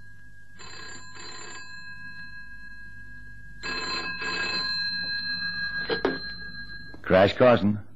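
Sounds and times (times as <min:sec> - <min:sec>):
old-fashioned telephone bell ringing: 0:00.0 - 0:07.1
speech: 0:07.1 - 0:07.9.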